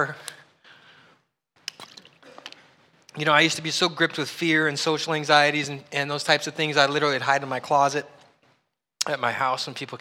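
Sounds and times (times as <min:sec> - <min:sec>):
speech: 0:00.0 - 0:00.2, 0:03.2 - 0:08.2, 0:09.0 - 0:10.0
person gulping and swallowing water: 0:01.7 - 0:02.6
soft pour-like rush of water: 0:01.7 - 0:02.6.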